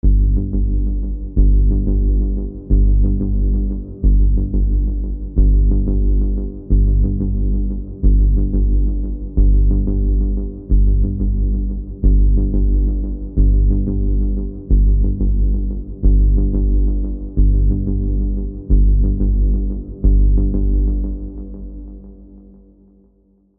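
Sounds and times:
synth bass pulse: 0.0s - 22.4s.

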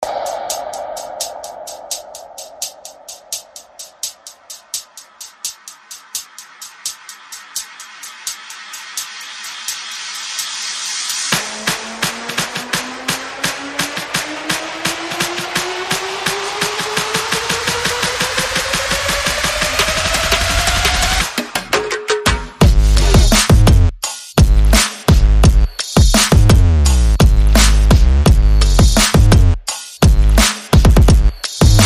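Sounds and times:
percussion: 0.0s - 31.8s
bass: 22.6s - 31.8s.

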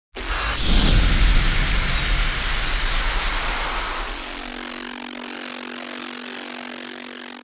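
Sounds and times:
hit sound effect: 0.2s - 5.0s.

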